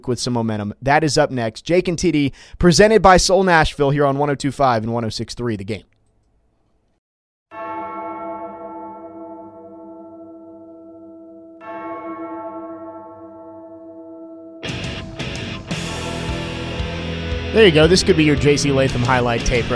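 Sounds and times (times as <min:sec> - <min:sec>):
speech: 0:00.0 - 0:05.9, 0:17.6 - 0:19.7
deep bell tolling at the intro of a heavy metal song: 0:07.5 - 0:19.7
loud distorted rock music: 0:14.6 - 0:19.7.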